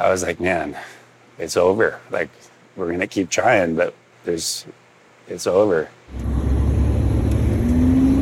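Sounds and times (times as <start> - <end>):
speech: 0.0 - 6.3
faint whine: 0.0 - 8.2
fire truck engine driving through a large fire: 6.1 - 8.2.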